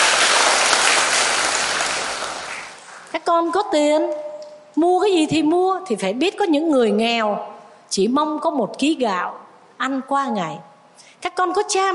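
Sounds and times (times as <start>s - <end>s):
audience applause: 0.0s - 2.8s
speech: 3.1s - 4.2s, 4.8s - 10.7s, 11.3s - 11.9s.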